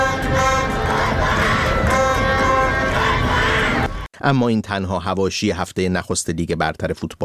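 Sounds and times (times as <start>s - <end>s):
football stadium fans cheering and chanting: 0.0s - 4.1s
speech: 4.2s - 7.2s.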